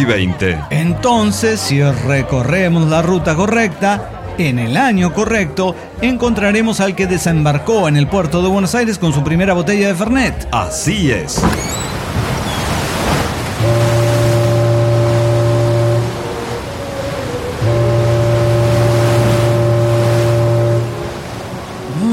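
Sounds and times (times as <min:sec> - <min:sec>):
speech: 0:00.0 - 0:11.9
ocean wash at the port of Buenos Aires: 0:11.3 - 0:22.1
deep ship's horn blasts as a ship arrives at the port of Buenos Aires: 0:12.6 - 0:22.1.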